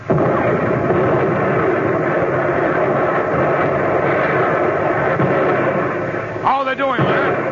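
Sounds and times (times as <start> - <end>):
naval guns firing at boats during a wartime sea battle: 0.0 - 7.4.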